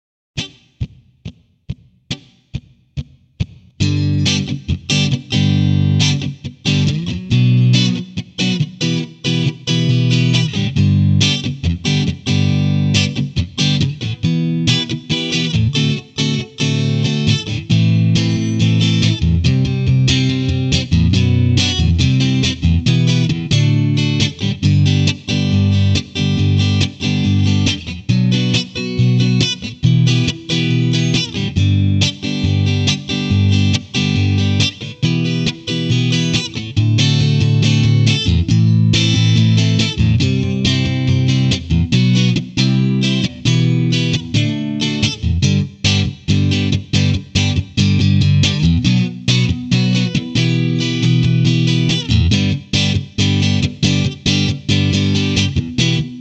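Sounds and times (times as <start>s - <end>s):
electric guitar lead playing over a chord progression: 0.4s - 56.1s.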